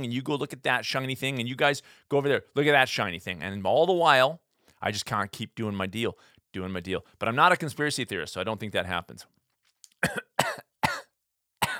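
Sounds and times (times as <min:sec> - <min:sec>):
speech: 0:00.0 - 0:09.4, 0:10.0 - 0:10.6
person coughing in short dry bursts: 0:10.0 - 0:11.7.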